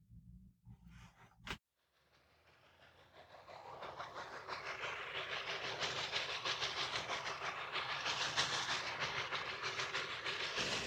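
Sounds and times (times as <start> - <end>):
train rumbling along the track with wheels clattering: 2.5 - 10.8.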